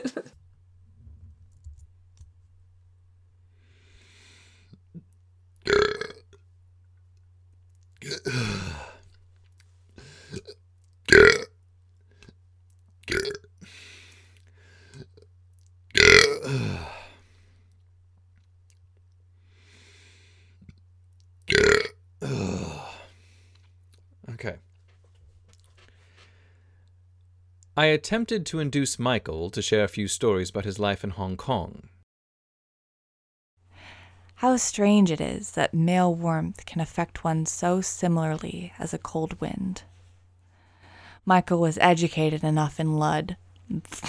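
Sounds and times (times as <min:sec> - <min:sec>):
short restrained burps: 0:05.7 - 0:06.2, 0:08.0 - 0:09.0, 0:10.4 - 0:11.5, 0:13.1 - 0:13.5, 0:16.0 - 0:17.0, 0:21.5 - 0:23.0, 0:43.9 - 0:44.0
speech: 0:24.4 - 0:24.6, 0:27.8 - 0:31.9, 0:34.4 - 0:39.9, 0:41.3 - 0:44.0.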